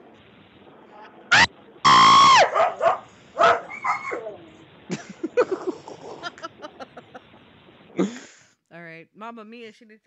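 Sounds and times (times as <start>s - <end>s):
dog drawn-out yelping howl: 1.3s - 4.6s
several dogs barking excitedly: 2.2s - 4.6s
laughter: 4.9s - 7.4s
speech: 9.1s - 10.0s.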